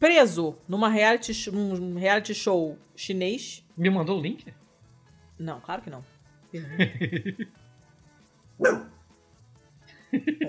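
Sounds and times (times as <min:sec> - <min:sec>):
speech: 0:00.0 - 0:04.6, 0:05.4 - 0:07.6, 0:08.6 - 0:09.0, 0:10.1 - 0:10.4
laughter: 0:06.6 - 0:07.6, 0:10.0 - 0:10.4
dog barking: 0:08.6 - 0:09.0.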